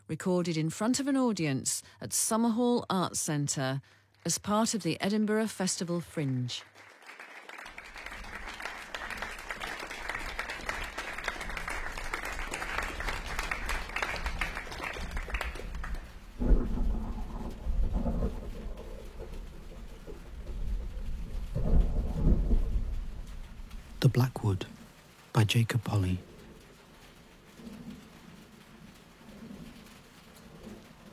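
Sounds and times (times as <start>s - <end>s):
speech: 0.1s - 6.9s, 25.5s - 26.4s
steady rain drumming on an old tin roof: 6.5s - 31.1s.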